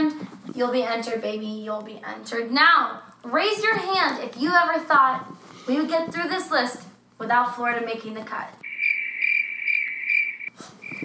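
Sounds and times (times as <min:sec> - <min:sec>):
speech: 0:00.6 - 0:08.6
crickets chirping: 0:08.6 - 0:11.0.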